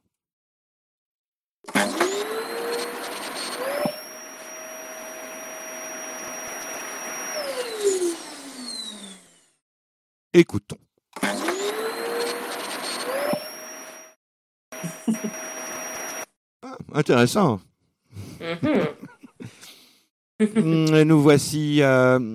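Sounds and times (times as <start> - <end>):
old vintage vacuum cleaner running at home: 1.7 - 9.6, 11.2 - 14.2, 14.8 - 16.3
speech: 10.4 - 11.5, 16.9 - 17.7, 18.4 - 19.0, 20.4 - 22.3
person laughing: 14.8 - 15.4, 18.2 - 19.8.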